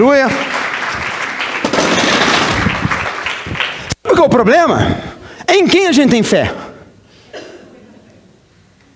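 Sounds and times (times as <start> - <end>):
speech: 0.0 - 0.5, 4.2 - 6.6
crowd applause: 0.1 - 4.0.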